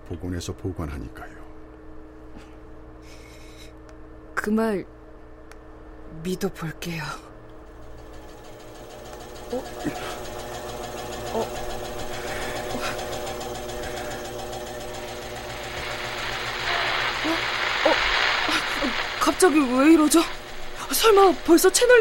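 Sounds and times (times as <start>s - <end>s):
speech: 0.1s - 1.4s, 4.4s - 5.0s, 6.1s - 7.3s, 9.5s - 10.3s, 11.3s - 11.8s, 18.8s - 21.9s
mechanical whirring of a secured message being transmitted: 7.6s - 21.9s
faint hiss: 15.0s - 21.9s.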